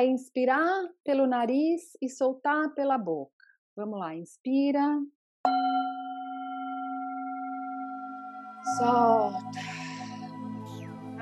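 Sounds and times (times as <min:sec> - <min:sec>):
speech: 0:00.0 - 0:05.9, 0:08.6 - 0:09.8
meditation bell struck, bright metallic tone: 0:05.5 - 0:10.6.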